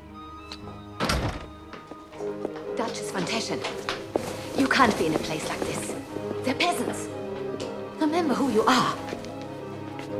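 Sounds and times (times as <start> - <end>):
faint steady musical background: 0.0 - 10.1
speech: 0.5 - 1.4, 2.2 - 4.0, 4.6 - 7.3, 8.0 - 9.2
door bursting open with a heavy thud: 1.0 - 1.6.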